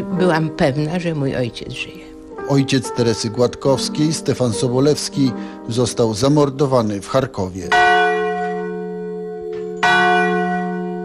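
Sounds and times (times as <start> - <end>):
speech: 0.2 - 7.9
large bronze bell placed underground tolling: 7.5 - 11.0.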